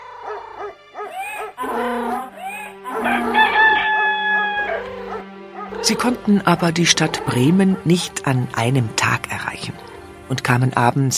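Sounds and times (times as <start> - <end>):
rooster crowing: 0.0 - 5.3
hooting sounds: 0.0 - 7.6
other animal cries: 0.0 - 7.9
speech: 5.9 - 11.1.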